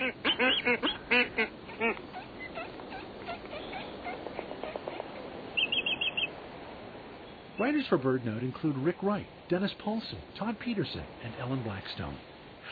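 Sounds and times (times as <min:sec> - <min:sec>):
black-footed albatross calls: 0:00.0 - 0:06.4
busy albatross colony background: 0:00.0 - 0:12.7
speech: 0:07.6 - 0:12.7.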